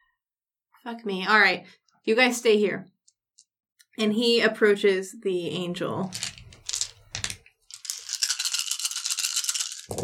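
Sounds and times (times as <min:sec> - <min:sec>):
speech: 0:00.8 - 0:03.0, 0:04.0 - 0:06.4
many dice rattling in a cupped hand: 0:06.1 - 0:10.0.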